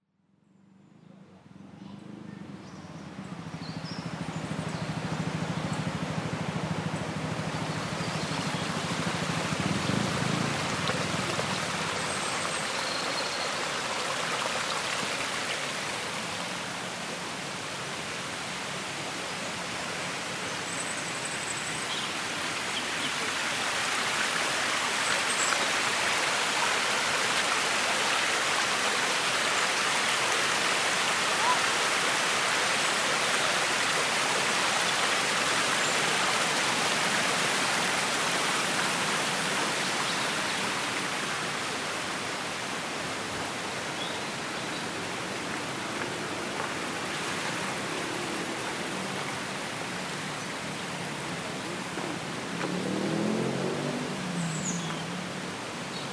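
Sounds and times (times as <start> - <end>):
country park soundscape: 0.4 - 56.1.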